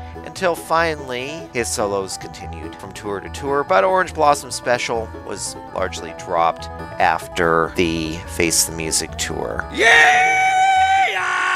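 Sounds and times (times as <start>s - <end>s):
speech: 0.2s - 10.4s
loud sustained rebel yell shout: 9.7s - 11.5s.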